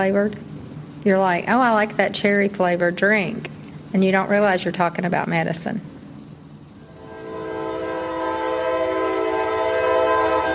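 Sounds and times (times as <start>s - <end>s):
speech: 0.0s - 5.9s
train horn blaring by the tracks in downtown Dalton: 6.8s - 10.5s.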